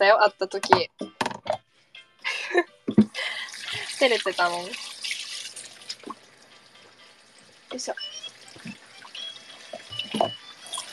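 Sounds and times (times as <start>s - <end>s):
speech: 0.0s - 1.6s, 2.2s - 3.4s, 4.0s - 4.9s, 7.7s - 8.2s
tap water running while washing dishes: 2.9s - 10.9s.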